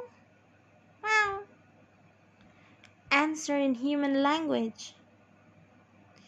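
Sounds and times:
kitten meowing: 1.0 - 1.4
speech: 3.3 - 5.0.

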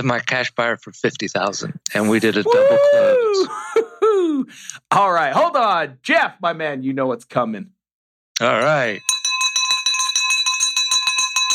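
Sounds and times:
speech: 0.0 - 7.8, 8.4 - 9.1
handbell clanging rapidly: 8.6 - 11.5.

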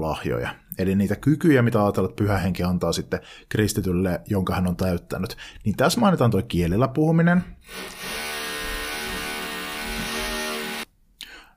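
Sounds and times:
speech: 0.0 - 8.2
neighbour's power drill boring into a wall: 7.6 - 10.9.

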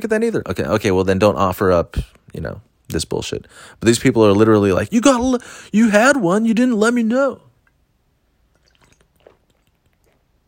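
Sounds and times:
speech: 0.0 - 7.5
person sipping water: 8.4 - 10.4
soft swallow of water: 8.5 - 10.4.

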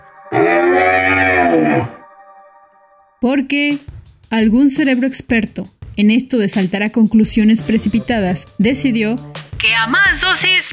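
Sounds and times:
cow mooing: 0.3 - 2.0
speech: 0.3 - 2.0, 3.2 - 10.7.

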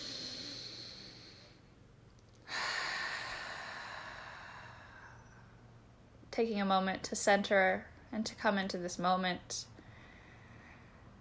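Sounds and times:
person taking a deep breath in and a long breath out: 0.0 - 1.7, 2.4 - 5.6, 9.8 - 11.1
speech: 6.4 - 9.7.

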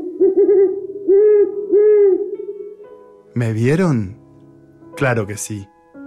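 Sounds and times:
owl hooting: 0.0 - 3.0
speech: 3.4 - 4.2, 5.0 - 5.7.

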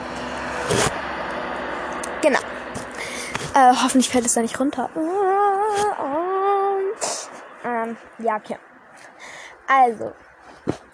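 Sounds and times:
vehicle rushing past: 0.0 - 3.6
steady street traffic hum: 0.0 - 10.9
speech: 2.2 - 2.6, 3.6 - 6.2, 7.9 - 9.1, 9.7 - 10.8.

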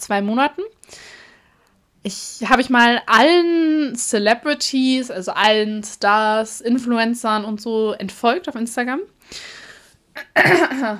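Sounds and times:
speech: 0.0 - 1.2, 2.0 - 9.6, 10.2 - 10.9
person clearing throat: 10.2 - 10.9.

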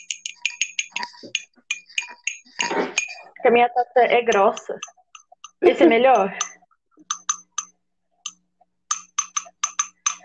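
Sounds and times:
small glasses clinking in a toast: 0.0 - 3.4, 4.3 - 10.2
speech: 3.4 - 4.9, 5.6 - 6.4.

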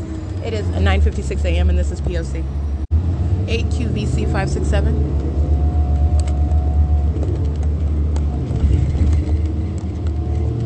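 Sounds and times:
bus engine rumble heard from inside while moving: 0.0 - 10.6
speech: 0.4 - 2.7, 3.5 - 5.4
faint rattles and clicks inside a moving bus: 5.9 - 10.6.

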